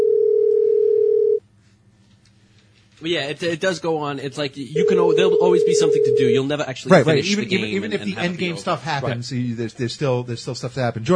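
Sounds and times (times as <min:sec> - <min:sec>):
telephone ringing tone: 0:00.0 - 0:01.4, 0:04.8 - 0:06.4
speech: 0:03.0 - 0:11.1
laughter: 0:06.9 - 0:09.3.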